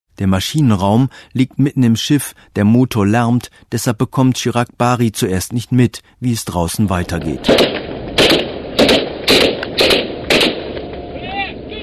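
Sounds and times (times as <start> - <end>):
speech: 0.2 - 8.4
machine guns fired by pirates attacking a tanker: 7.4 - 10.8.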